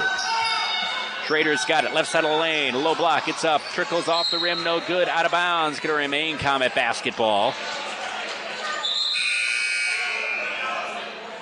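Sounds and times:
roar and murmur of a large indoor crowd: 0:00.0 - 0:11.3
speech: 0:01.3 - 0:07.8
basketball arena halftime buzzer blaring: 0:09.1 - 0:10.7.

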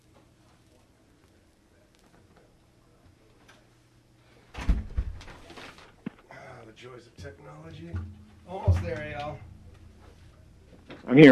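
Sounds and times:
door swinging and thudding shut: 0:04.6 - 0:05.5
speech: 0:06.8 - 0:09.5, 0:11.0 - 0:11.3
low knocks: 0:07.2 - 0:11.0.

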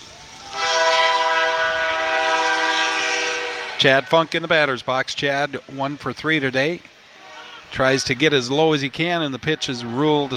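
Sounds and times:
passing train horn blaring: 0:00.3 - 0:04.7
speech: 0:03.8 - 0:07.0, 0:07.7 - 0:10.3.

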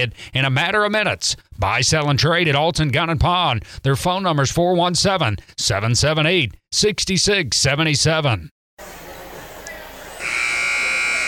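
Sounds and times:
speech: 0:00.0 - 0:09.0
basketball game buzzer at a girls' tournament: 0:10.2 - 0:11.2.

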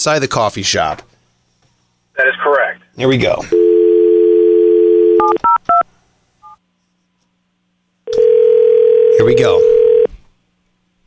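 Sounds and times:
speech: 0:00.0 - 0:01.1, 0:03.0 - 0:03.6, 0:09.2 - 0:09.8
telephone dial tone: 0:03.6 - 0:05.5, 0:08.1 - 0:10.1.

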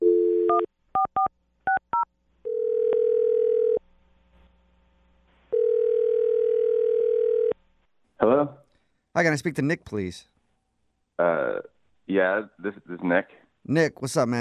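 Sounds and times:
phone line dial tone: 0:00.0 - 0:01.3, 0:02.5 - 0:03.8, 0:05.5 - 0:07.6
speech: 0:09.2 - 0:10.3, 0:11.2 - 0:14.4.

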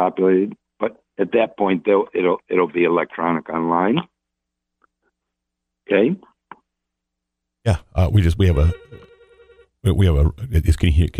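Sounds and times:
speech: 0:00.0 - 0:04.1, 0:05.9 - 0:06.3, 0:07.6 - 0:09.0, 0:09.8 - 0:11.1
telephone ringing in a trilling burst: 0:08.2 - 0:09.8.

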